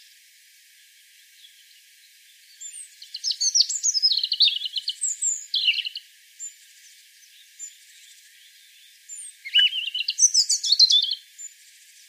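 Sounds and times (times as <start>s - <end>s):
European robin Erithacus rubecula singing: 1.4s - 12.0s.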